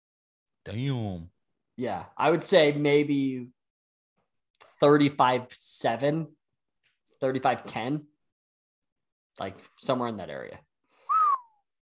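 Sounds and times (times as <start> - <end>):
speech: 0.6 - 3.6, 4.8 - 6.4, 7.2 - 8.1, 9.4 - 10.7
person whistling: 11.0 - 11.7.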